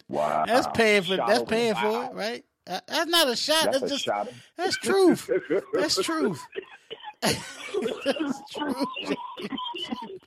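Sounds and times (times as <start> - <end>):
speech: 0.1 - 10.2
laughter: 5.1 - 10.2
man coughing hard: 5.7 - 8.8.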